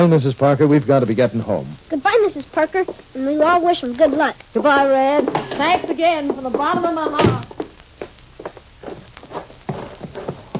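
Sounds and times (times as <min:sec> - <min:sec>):
speech: 0:00.0 - 0:07.5
horse hooves clip-clopping at a walking pace: 0:04.7 - 0:10.5.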